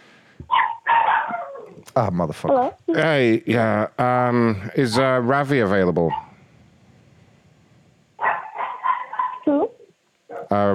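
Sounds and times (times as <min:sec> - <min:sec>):
dog short sharp bark: 0:00.5 - 0:01.7, 0:06.1 - 0:06.3, 0:08.2 - 0:09.5, 0:10.3 - 0:10.5
dog drawn-out wavering yowl: 0:00.5 - 0:01.8, 0:08.2 - 0:09.6
speech: 0:02.0 - 0:06.2, 0:10.6 - 0:10.7.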